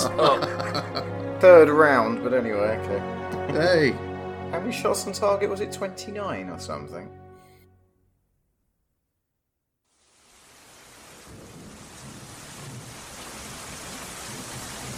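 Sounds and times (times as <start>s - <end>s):
laughter: 0.0s - 1.2s
speech: 0.1s - 7.2s
heavy rain: 9.9s - 14.9s
thunder rumbling: 11.0s - 14.9s.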